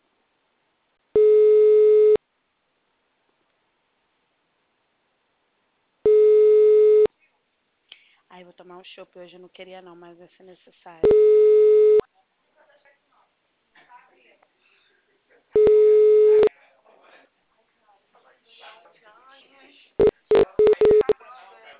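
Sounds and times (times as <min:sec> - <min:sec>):
telephone busy signal: 0:01.2 - 0:02.2, 0:06.1 - 0:07.1, 0:11.0 - 0:12.0, 0:15.6 - 0:16.5, 0:20.3 - 0:21.2
speech: 0:08.4 - 0:11.5.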